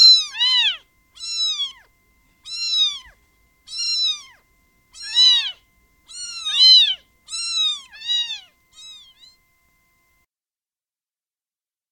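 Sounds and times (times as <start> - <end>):
domestic cat kittens meowing: 0.0 - 9.4.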